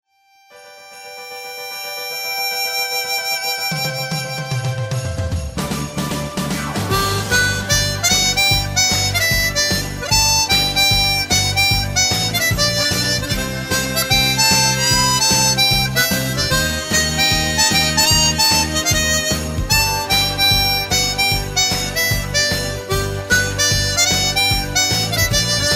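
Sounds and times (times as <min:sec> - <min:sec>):
harmonica: 0:00.1 - 0:25.7.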